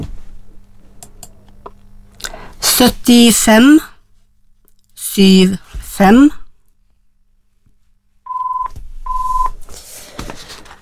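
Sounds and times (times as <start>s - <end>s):
speech: 2.8s - 3.9s, 5.2s - 6.4s
electronic telephone dialing and ringing tones: 8.3s - 9.6s.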